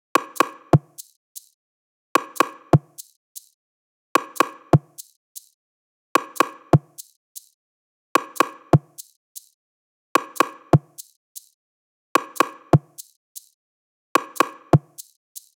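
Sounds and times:
percussion loop: 0.2 - 1.6, 2.2 - 3.6, 4.2 - 5.6, 6.2 - 7.6, 8.2 - 9.6, 10.2 - 11.6, 12.2 - 13.6, 14.2 - 15.5.

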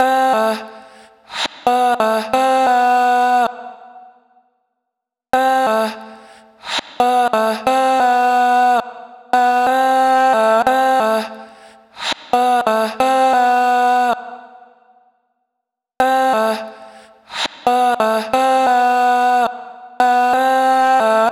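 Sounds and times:
vocal chop in A minor: 0.0 - 4.2, 5.4 - 9.7, 10.4 - 14.7, 16.0 - 21.3.

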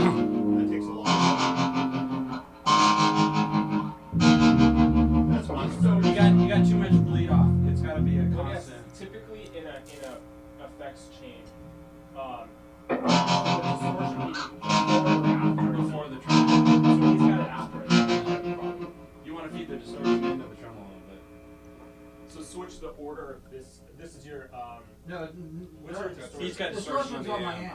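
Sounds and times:
distorted electric guitar playing two-string power chords: 0.0 - 8.8, 12.9 - 22.3.

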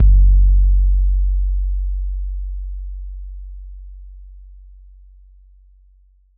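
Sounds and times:
raw 808 bass: 0.0 - 4.8.

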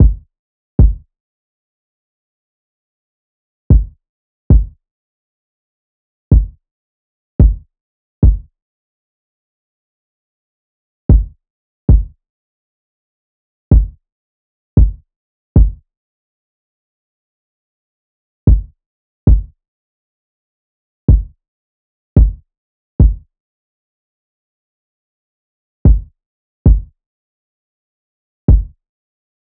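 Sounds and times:
kick drum loop: 0.0 - 0.2, 0.8 - 1.0, 3.7 - 4.8, 6.3 - 6.6, 7.4 - 7.6, 8.2 - 8.5, 11.1 - 11.3, 11.9 - 12.1, 13.7 - 14.0, 14.8 - 15.0, 15.6 - 15.8, 18.5 - 18.7, 19.3 - 19.5, 21.1 - 21.3, 22.2 - 22.4, 23.0 - 23.2, 25.9 - 26.1, 26.7 - 26.9, 28.5 - 28.8.

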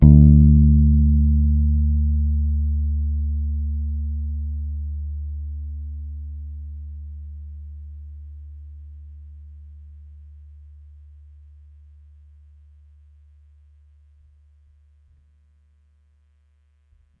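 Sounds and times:
electric bass one-shot note D: 0.0 - 11.0.

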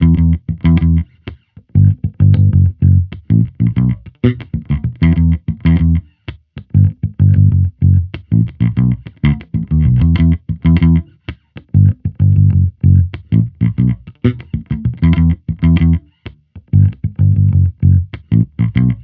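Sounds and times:
amped electric bass loop in E minor: 0.0 - 19.0.

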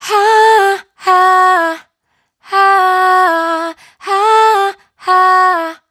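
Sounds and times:
person singing dry raw vocals: 0.0 - 1.9, 2.5 - 5.8.

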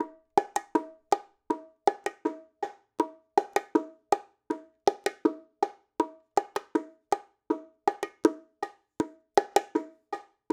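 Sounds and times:
Latin bongo percussion loop: 0.0 - 10.5.

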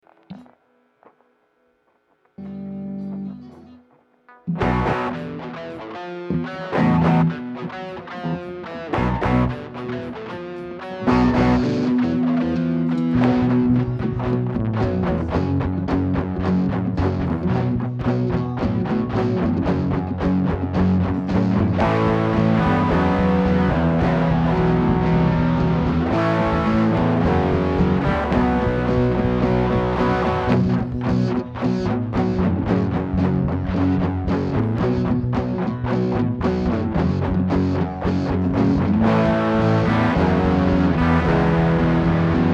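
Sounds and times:
guitars: 0.0 - 42.5
bass: 4.5 - 5.5, 6.3 - 10.3, 11.0 - 42.5.

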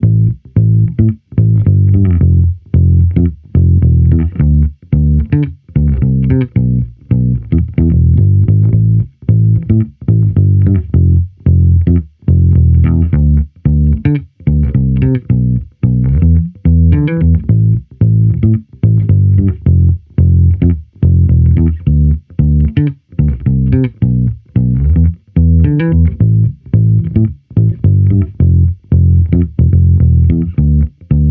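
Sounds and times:
amped electric bass loop in A minor: 0.0 - 31.2.

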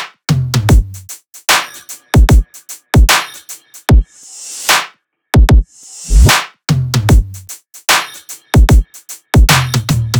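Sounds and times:
full drum loop: 0.5 - 4.0, 6.9 - 10.1.

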